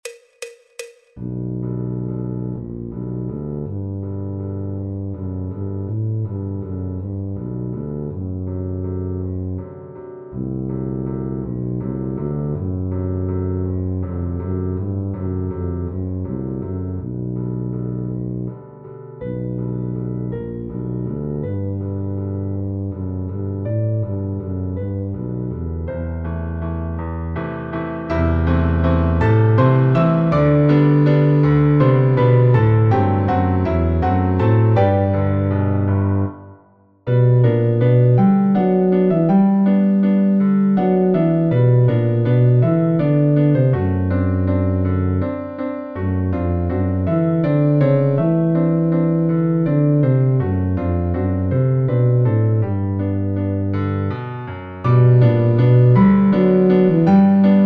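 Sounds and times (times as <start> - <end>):
double bass in G major: 1.2 - 36.5, 37.1 - 57.6
tuba in G major: 1.2 - 36.5, 37.1 - 57.6.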